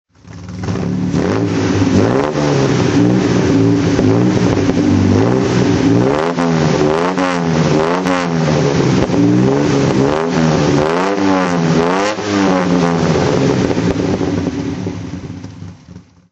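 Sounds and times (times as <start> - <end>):
Healey 3000 Mk3 engine throttle: 0.1 - 16.3.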